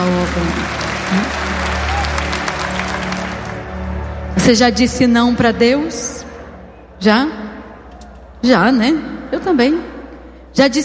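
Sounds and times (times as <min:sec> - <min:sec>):
audience applauding: 0:00.0 - 0:04.2
speech: 0:00.3 - 0:01.6, 0:04.5 - 0:06.2, 0:07.0 - 0:07.4, 0:08.4 - 0:09.9, 0:10.6 - 0:10.8.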